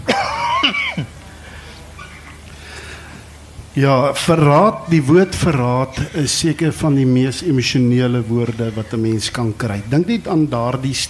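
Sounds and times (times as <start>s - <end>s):
rough throaty rasping coughs: 0.0s - 1.2s
speech: 3.8s - 11.0s.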